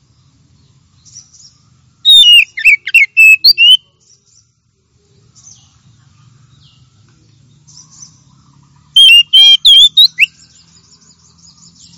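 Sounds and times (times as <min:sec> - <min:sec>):
Oriental magpie-robin singing: 0:01.0 - 0:04.5, 0:07.5 - 0:11.9.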